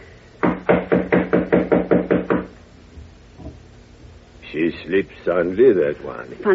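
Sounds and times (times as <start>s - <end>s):
knocking on a door: 0.4s - 2.5s
speech: 4.6s - 6.5s.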